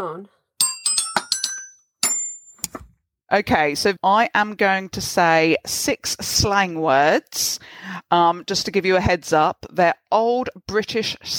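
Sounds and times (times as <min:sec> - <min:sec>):
speech: 0:00.0 - 0:00.4, 0:03.3 - 0:11.3
small bright bell dinging as a game buzzer: 0:00.6 - 0:02.7.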